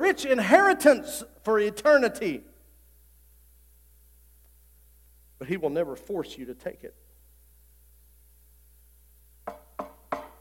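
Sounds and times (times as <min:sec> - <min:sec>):
quiet hum: 0:00.0 - 0:10.4
speech: 0:00.1 - 0:02.5, 0:05.4 - 0:07.0
knocking on a door: 0:09.4 - 0:10.4.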